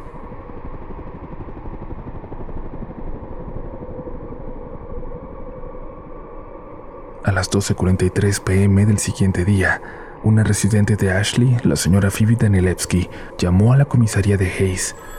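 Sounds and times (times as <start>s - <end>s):
helicopter flying overhead with engine drone and rotor chop: 0.0s - 15.1s
speech: 7.4s - 15.1s.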